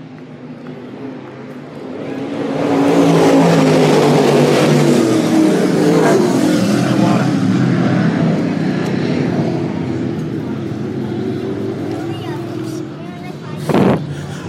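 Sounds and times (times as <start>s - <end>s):
crate late model race car engines roaring at full throttle: 0.0s - 14.4s.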